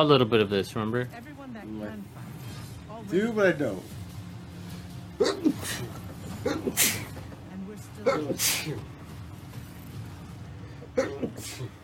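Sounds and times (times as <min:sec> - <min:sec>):
speech: 0:00.0 - 0:02.2, 0:03.0 - 0:04.0, 0:05.2 - 0:07.2, 0:08.0 - 0:08.9, 0:11.0 - 0:11.8
man with allergies sneezing: 0:05.2 - 0:07.1, 0:08.1 - 0:08.8, 0:10.9 - 0:11.8.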